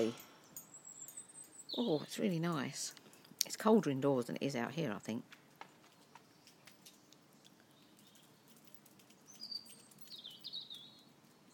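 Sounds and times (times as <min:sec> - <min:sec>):
speech: 0:00.0 - 0:00.3, 0:01.8 - 0:05.4
bird singing outdoors, possibly a robin: 0:00.0 - 0:02.8, 0:05.9 - 0:11.5.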